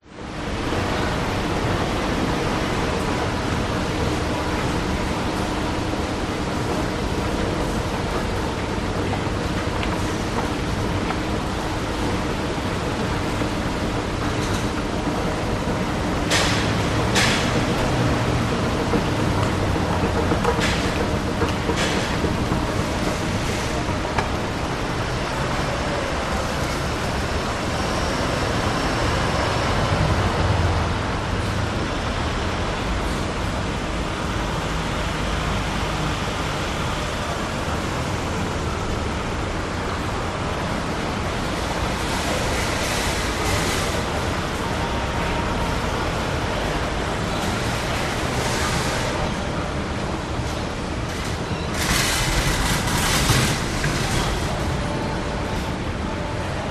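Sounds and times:
traffic at a supermarket entrance: 0:00.0 - 0:56.6
shopping trolleys at a supermarket entrance: 0:00.2 - 0:30.3, 0:36.6 - 0:56.6
escalators at a supermarket entrance: 0:00.2 - 0:31.8, 0:32.4 - 0:56.6.

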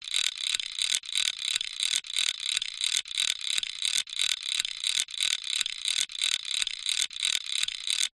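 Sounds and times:
industrial metal tool winding cogs: 0:00.0 - 0:08.1.

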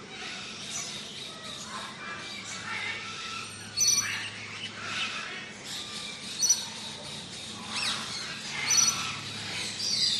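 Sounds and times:
mixed parrots and parakeets chattering in a large tropical aviary: 0:00.1 - 0:10.1.

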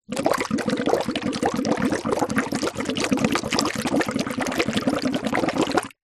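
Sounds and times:
water bubbles through a plastic straw in small shallow water container: 0:00.0 - 0:06.0.

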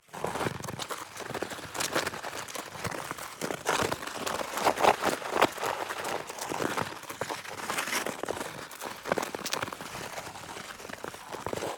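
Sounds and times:
ice skate gliding: 0:00.0 - 0:11.7.

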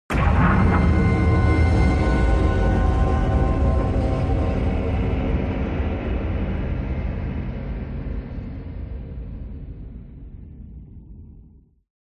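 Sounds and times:
cinematic galactic explosion hit: 0:00.1 - 0:08.3.

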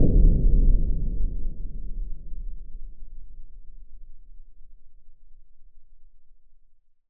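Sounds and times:
impact boom: 0:00.0 - 0:03.6.

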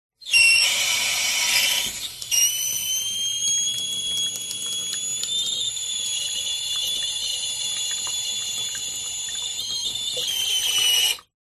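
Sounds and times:
household tap faucet running with long loud pressure hiss: 0:00.2 - 0:11.3.

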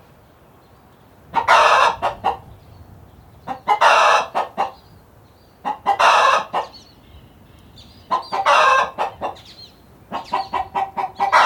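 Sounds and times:
several chickens squawking and clucking inside a hen house on a farm: 0:01.3 - 0:02.5, 0:03.4 - 0:04.8, 0:05.6 - 0:06.8, 0:08.0 - 0:11.4.

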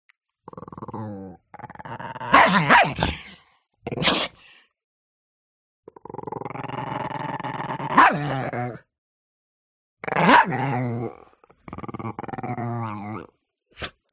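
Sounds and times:
Chihuahua growling: 0:00.4 - 0:03.2, 0:05.9 - 0:08.8, 0:10.0 - 0:13.9
Chihuahua barking: 0:02.3 - 0:03.0, 0:07.9 - 0:08.2, 0:10.2 - 0:10.6.

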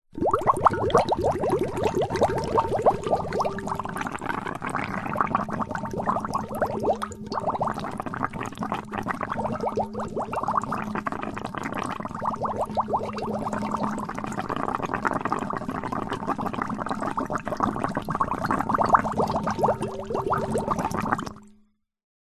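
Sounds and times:
water in metal container bubbling from blowing through plastic flexible tube: 0:00.1 - 0:21.5.

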